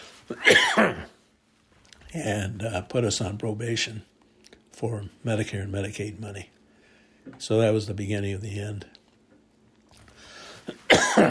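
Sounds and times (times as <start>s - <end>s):
speech: 0.3s - 0.6s, 2.1s - 4.1s, 4.8s - 6.6s, 7.2s - 9.0s
person coughing harshly: 0.3s - 1.2s, 10.6s - 11.3s
quiet intake of breath: 6.7s - 7.3s, 10.1s - 10.8s.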